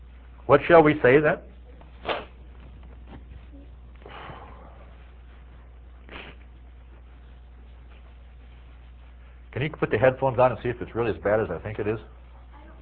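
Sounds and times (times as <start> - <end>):
quiet noise: 0.0 - 12.8
steady low hum: 0.0 - 12.8
speech: 0.5 - 1.5, 9.6 - 12.2
breathy sniffs: 4.0 - 5.2, 6.0 - 6.7.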